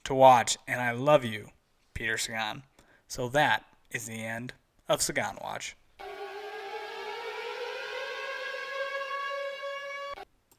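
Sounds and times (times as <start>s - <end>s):
speech: 0.1s - 5.8s
siren wailing: 6.0s - 10.3s.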